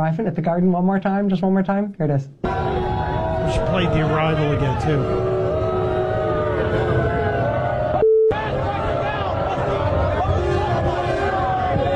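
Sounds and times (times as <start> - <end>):
speech: 0.0 - 5.3
large indoor crowd booing loudly: 2.4 - 11.9
short electronic beep: 8.0 - 8.4.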